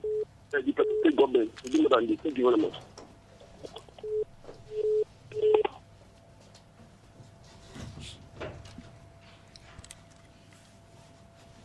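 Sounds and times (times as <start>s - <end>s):
faint steady hum: 0.0s - 11.6s
speech: 0.5s - 2.9s
soft rustling and handling noise: 1.2s - 11.6s
phone line touch-tone dialing beeps: 4.0s - 5.8s.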